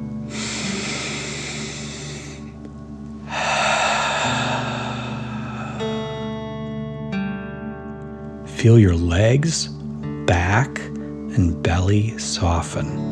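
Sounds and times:
soft sustained musical tones: 0:00.0 - 0:13.1
deep breathing in and exhaling forcefully through the mouth: 0:00.3 - 0:06.4
speech: 0:08.6 - 0:09.8, 0:10.5 - 0:13.1.

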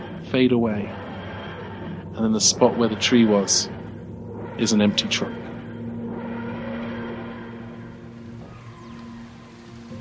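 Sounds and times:
ancient engines grinding and groaning at night: 0:00.0 - 0:09.9
speech: 0:00.3 - 0:01.0, 0:02.2 - 0:03.8, 0:04.6 - 0:05.4.

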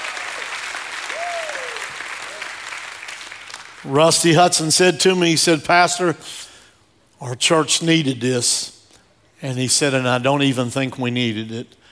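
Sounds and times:
large church audience clapping in praise: 0:00.0 - 0:04.2
person cheering or whooping: 0:01.1 - 0:02.6
speech: 0:03.8 - 0:06.5, 0:07.2 - 0:08.8, 0:09.4 - 0:11.8.

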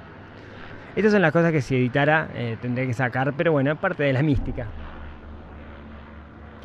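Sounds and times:
speech: 0:01.0 - 0:04.8
broadband mechanical rumble with a low hum: 0:04.3 - 0:06.6.

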